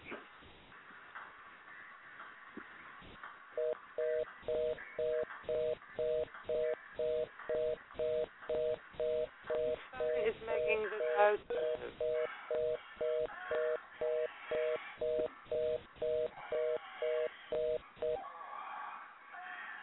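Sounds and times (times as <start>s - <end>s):
faint noise: 0.0s - 19.8s
telephone dialing: 3.6s - 18.2s.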